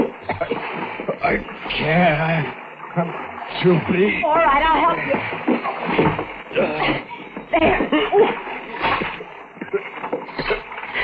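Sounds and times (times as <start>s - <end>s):
river water splashing as a man is hauled into a boat: 0.0s - 11.0s
speech: 1.3s - 8.5s
laughter: 6.6s - 8.9s.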